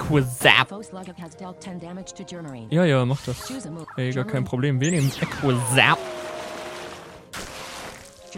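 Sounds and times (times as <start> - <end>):
speech: 0.1 - 6.2
hot water pouring in a steady rushing stream: 6.0 - 8.3.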